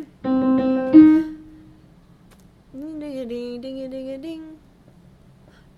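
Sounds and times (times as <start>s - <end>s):
soprano ding: 0.3s - 1.6s.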